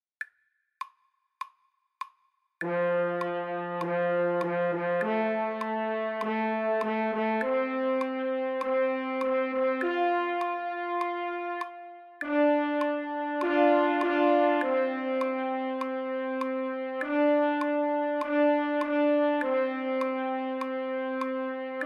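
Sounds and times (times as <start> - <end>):
French horn fanfare: 2.6 - 21.8.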